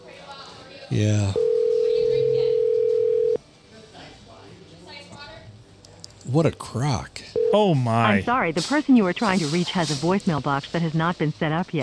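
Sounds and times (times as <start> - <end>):
faint noise: 0.0 - 11.8
speech: 0.9 - 1.4, 6.3 - 11.8
telephone dial tone while placing a call: 1.4 - 3.4.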